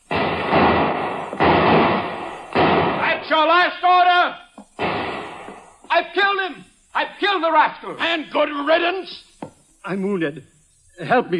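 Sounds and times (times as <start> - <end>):
gunfire in a dramatized ship boarding fight: 0.0 - 3.4, 4.8 - 5.7
speech: 3.3 - 4.4, 6.0 - 11.3.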